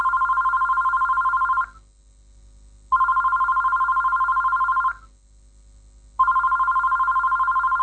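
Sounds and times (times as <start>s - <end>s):
telephone ringing: 0.0s - 1.8s, 2.9s - 5.0s, 6.2s - 7.8s.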